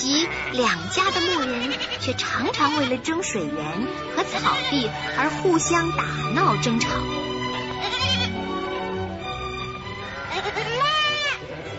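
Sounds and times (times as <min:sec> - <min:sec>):
speech: 0:00.0 - 0:07.2
low busy background: 0:00.0 - 0:11.7
livestock bleating while grazing on pasture: 0:00.1 - 0:03.0, 0:04.2 - 0:05.2, 0:07.6 - 0:08.4, 0:10.0 - 0:11.7.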